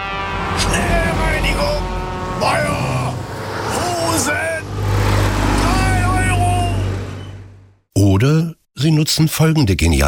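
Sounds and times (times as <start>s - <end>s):
heavy trucks rumbling past: 0.0s - 7.9s
truck drivers shouting: 0.1s - 7.7s
speech: 9.0s - 10.0s.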